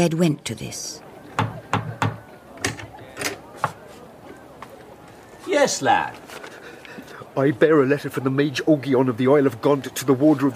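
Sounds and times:
speech: 0:00.0 - 0:01.0, 0:05.5 - 0:06.3, 0:07.4 - 0:10.5
knocking on a small plain wooden door in a stone wall: 0:01.4 - 0:02.2.

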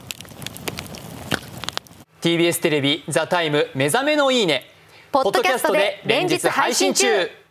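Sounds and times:
crackling bonfire: 0:00.0 - 0:02.1
speech: 0:02.2 - 0:07.4.

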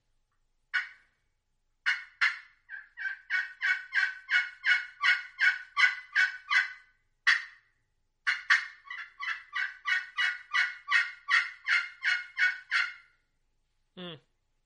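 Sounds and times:
crystal friction turkey call imitating hen yelps: 0:00.7 - 0:01.0, 0:01.8 - 0:07.6, 0:08.3 - 0:13.1.

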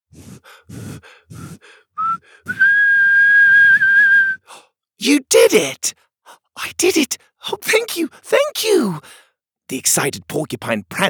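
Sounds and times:
breathy puffs: 0:00.1 - 0:02.8, 0:04.4 - 0:04.7
steady fairly loud whistled note: 0:02.0 - 0:04.5
speech: 0:05.0 - 0:06.0, 0:06.7 - 0:11.0.

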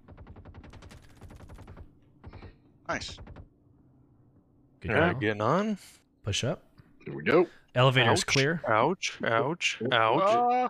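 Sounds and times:
automatic gunfire: 0:00.0 - 0:03.5
speech: 0:02.9 - 0:03.3, 0:04.8 - 0:10.6.

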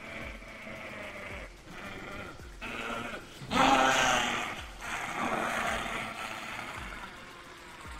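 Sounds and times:
wolf howling: 0:00.0 - 0:07.3
agonized human scream: 0:02.1 - 0:06.9.

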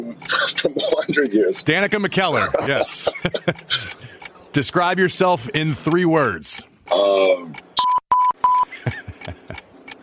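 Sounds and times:
speech: 0:00.6 - 0:07.6
laughter: 0:02.1 - 0:04.2, 0:08.7 - 0:09.7
buzzer sounding short electronic beeps: 0:07.8 - 0:08.7.

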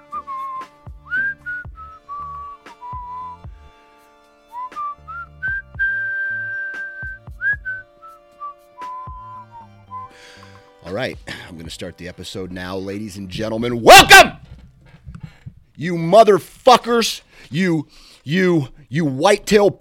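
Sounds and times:
person whistling a slow wandering tune with pitch slides: 0:00.0 - 0:03.5, 0:04.5 - 0:10.5
speech: 0:10.9 - 0:14.4, 0:15.8 - 0:19.7.

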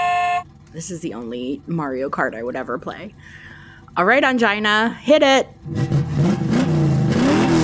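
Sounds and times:
speech: 0:00.7 - 0:05.9
car engine revving and accelerating: 0:05.6 - 0:07.6.

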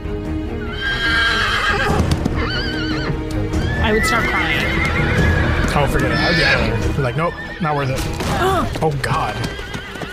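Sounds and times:
horse neighing: 0:00.6 - 0:10.1
horse hooves clip-clopping: 0:01.5 - 0:10.1
speech: 0:03.9 - 0:04.8, 0:05.8 - 0:09.7.

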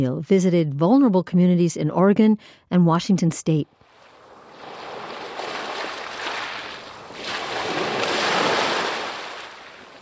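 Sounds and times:
speech: 0:00.0 - 0:03.8
faint wind: 0:03.7 - 0:09.9
surf washing onto a beach at Port Townsend, Olympic Peninsula, Washington State: 0:03.8 - 0:09.9.

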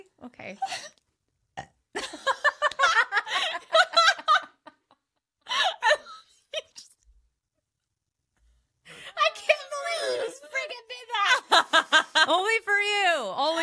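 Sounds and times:
speech: 0:00.2 - 0:01.0
person burping on command: 0:01.6 - 0:01.8
laughter: 0:02.0 - 0:06.2, 0:09.2 - 0:12.4.

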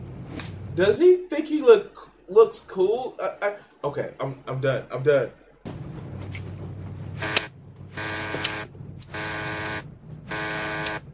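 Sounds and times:
speech: 0:00.8 - 0:05.8
low hum: 0:05.3 - 0:11.1
harsh electric buzzer: 0:07.2 - 0:11.1.

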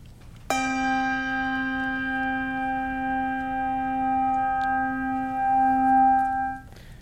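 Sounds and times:
lower-to-middle bass handbell ringing: 0:00.5 - 0:06.8.

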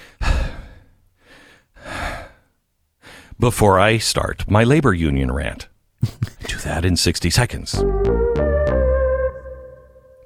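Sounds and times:
person taking a deep breath: 0:00.0 - 0:03.3
speech: 0:03.4 - 0:05.7, 0:06.6 - 0:08.5.

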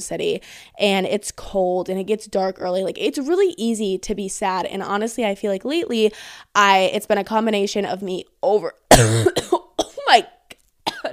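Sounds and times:
speech: 0:00.0 - 0:10.4
person coughing: 0:08.9 - 0:10.1, 0:10.9 - 0:11.1.

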